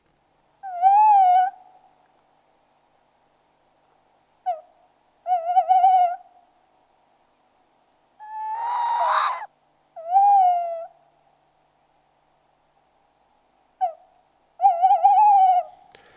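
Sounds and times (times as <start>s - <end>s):
tawny owl hooting in late winter in southern Finland: 0.6s - 1.8s, 4.4s - 6.2s, 8.2s - 11.0s, 13.8s - 15.9s.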